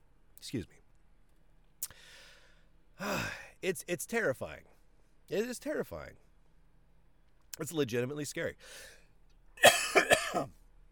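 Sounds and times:
speech: 0:00.4 - 0:00.8, 0:03.0 - 0:04.7, 0:05.3 - 0:06.2, 0:07.6 - 0:09.0, 0:10.3 - 0:10.6
quick raspy coughs from a tickle in the throat: 0:09.6 - 0:10.6.

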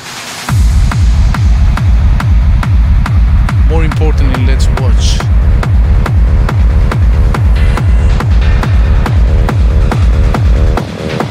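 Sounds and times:
electronic dance track with heavy four-on-the-floor kick drum: 0:00.0 - 0:11.2.

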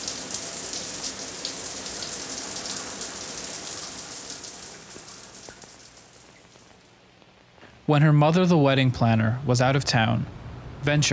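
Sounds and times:
shower water running: 0:00.0 - 0:06.9
speech: 0:07.9 - 0:11.1.

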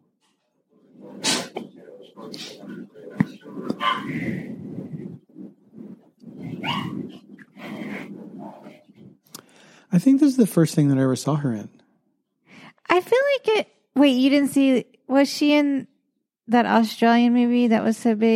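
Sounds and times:
puppy barking and yipping: 0:03.8 - 0:04.1, 0:06.6 - 0:07.0
speech: 0:10.0 - 0:11.8, 0:13.0 - 0:15.9, 0:16.5 - 0:18.3.

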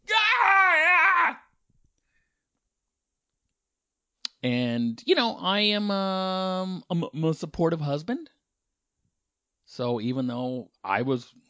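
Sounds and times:
person imitating a woman screaming in her sleep: 0:00.0 - 0:01.5
speech: 0:04.4 - 0:08.4, 0:09.7 - 0:11.4.

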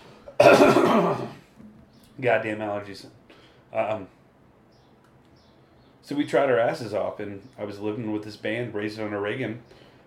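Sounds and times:
cough: 0:00.3 - 0:01.4
speech: 0:02.2 - 0:04.2, 0:06.1 - 0:09.8.

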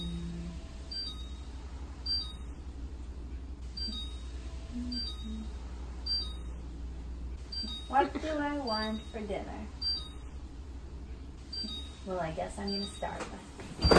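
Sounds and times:
appliance beeping with short high electronic chirps: 0:00.0 - 0:02.7, 0:03.7 - 0:06.6, 0:07.4 - 0:10.4, 0:11.4 - 0:13.9
steady low hum: 0:00.0 - 0:13.9
speech: 0:07.9 - 0:09.8, 0:12.1 - 0:13.9.

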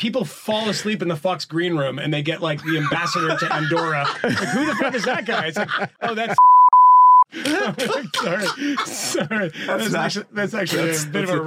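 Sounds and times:
speech: 0:00.0 - 0:06.5, 0:07.3 - 0:11.4
laughter: 0:02.4 - 0:06.4, 0:07.3 - 0:11.4
loud electronic censor bleep: 0:06.4 - 0:07.3.

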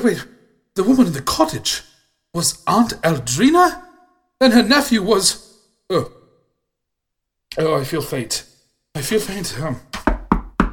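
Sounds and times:
speech: 0:00.0 - 0:03.8, 0:04.4 - 0:06.2, 0:07.5 - 0:10.0
heavy knocking on a locked door: 0:10.0 - 0:10.7.

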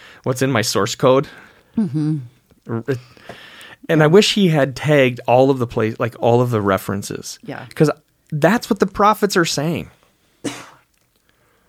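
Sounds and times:
speech: 0:00.2 - 0:10.7
person sneezing: 0:10.5 - 0:10.8.

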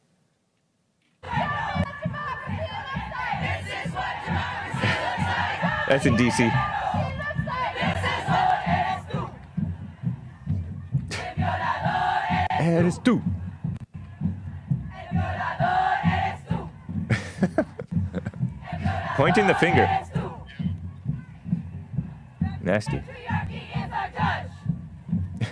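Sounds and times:
large protest crowd chanting against patriarchy at a women's march: 0:01.2 - 0:17.1, 0:18.4 - 0:25.3
laughter: 0:04.5 - 0:06.5, 0:11.1 - 0:11.4, 0:17.0 - 0:19.8
speech: 0:05.9 - 0:06.8, 0:12.7 - 0:13.4, 0:19.2 - 0:20.0, 0:22.7 - 0:23.4.

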